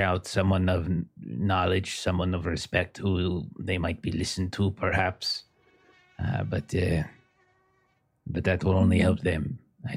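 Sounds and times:
speech: 0:00.0 - 0:05.5, 0:06.2 - 0:07.2, 0:08.3 - 0:09.9
insects buzzing in the woods: 0:05.5 - 0:08.2.

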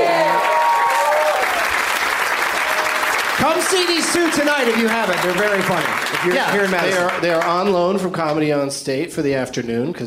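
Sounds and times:
audience applause at a live comedy show in Madison: 0:00.0 - 0:08.0
speech: 0:03.4 - 0:10.0.

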